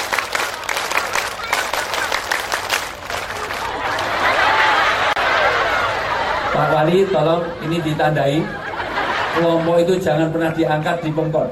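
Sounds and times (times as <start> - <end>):
group clapping in scout clap rhythm: 0.0 - 4.9
crowd clapping and noise: 0.0 - 5.8
laughter: 1.1 - 11.5
speech: 6.8 - 8.6, 9.4 - 11.5.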